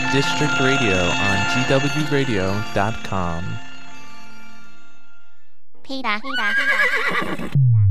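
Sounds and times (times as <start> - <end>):
speech: 0.1 - 3.7, 5.9 - 7.7
horse neighing: 6.3 - 7.6.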